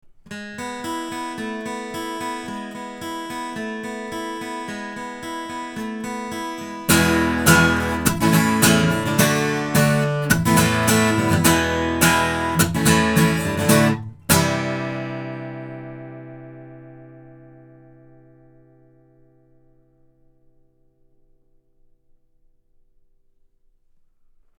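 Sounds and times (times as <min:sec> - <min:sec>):
guitar recorded with an omni microphone: 0:00.2 - 0:21.5.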